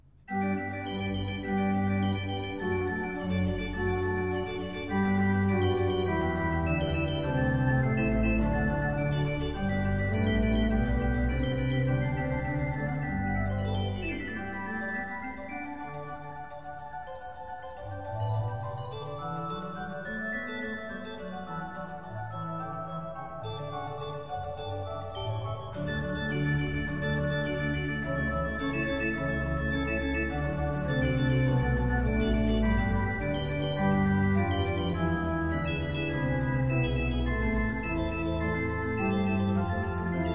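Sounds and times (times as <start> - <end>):
organ playing a concerto presto movement in G major: 0.3 - 40.3.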